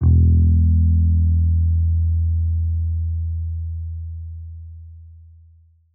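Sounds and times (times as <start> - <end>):
lo-fi bass guitar shot in E: 0.0 - 5.6.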